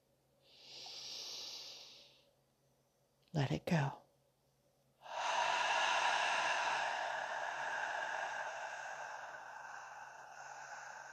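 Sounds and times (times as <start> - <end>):
slow deep breath in through nose: 0.4 - 2.3, 5.0 - 11.1
speech: 3.3 - 4.0.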